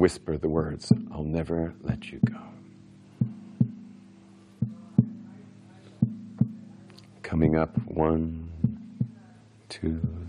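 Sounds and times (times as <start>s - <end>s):
speech: 0.0s - 2.5s, 7.3s - 8.4s, 9.7s - 10.2s
heartbeat lub-dub thumps: 2.2s - 2.6s, 3.2s - 3.9s, 4.6s - 5.2s, 6.0s - 6.7s, 7.6s - 9.2s, 9.9s - 10.2s.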